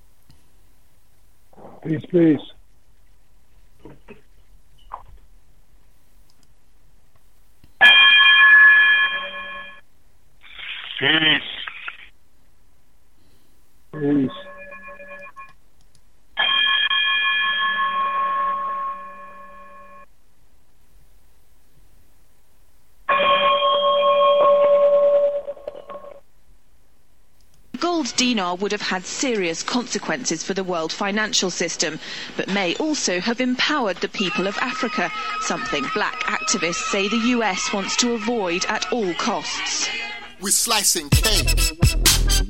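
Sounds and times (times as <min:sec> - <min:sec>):
speech: 0:01.8 - 0:02.6, 0:28.2 - 0:42.0
radio station electronic chime outro with bell-like tones: 0:07.8 - 0:09.8, 0:14.0 - 0:15.5, 0:16.4 - 0:20.1, 0:23.1 - 0:26.1.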